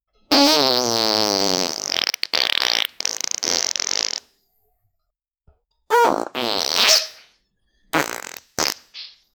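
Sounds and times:
screaming farts: 0.3s - 4.3s, 5.9s - 7.3s, 7.9s - 9.2s.

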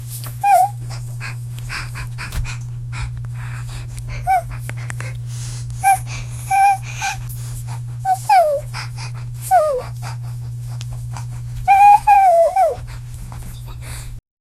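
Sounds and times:
puppy whimpering: 0.4s - 2.6s, 8.1s - 8.7s, 9.4s - 10.0s, 11.2s - 13.8s.

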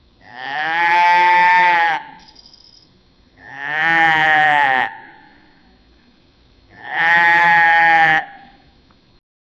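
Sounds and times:
cow mooing: 0.3s - 2.2s, 3.4s - 5.1s, 6.8s - 8.5s.

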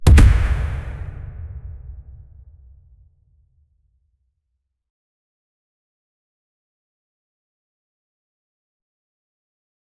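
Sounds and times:
punches in a fight: 0.0s - 2.1s.

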